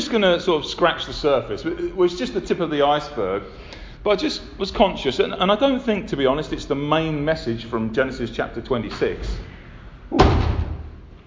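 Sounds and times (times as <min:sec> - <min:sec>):
speech: 0:00.1 - 0:10.5
door slamming shut in the wind: 0:10.1 - 0:11.2.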